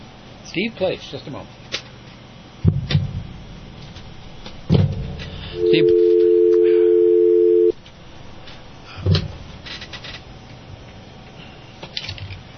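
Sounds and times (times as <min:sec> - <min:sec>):
speech: 0:00.5 - 0:01.6, 0:05.6 - 0:06.2
telephone dial tone: 0:05.6 - 0:07.7.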